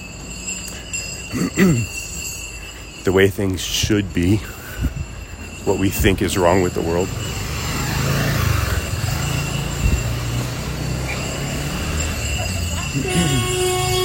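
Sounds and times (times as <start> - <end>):
traffic rumble: 0.0 - 14.0
speech: 1.3 - 2.0, 3.1 - 4.9, 5.6 - 7.4
car horn honking in traffic: 12.8 - 14.0.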